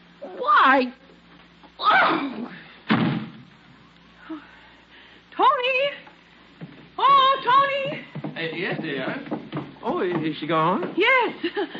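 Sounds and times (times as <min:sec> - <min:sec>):
speech: 0:00.6 - 0:01.0, 0:01.8 - 0:02.6, 0:05.4 - 0:06.0, 0:07.0 - 0:11.7
door slammed shut with heavy booming bangs: 0:02.9 - 0:03.4.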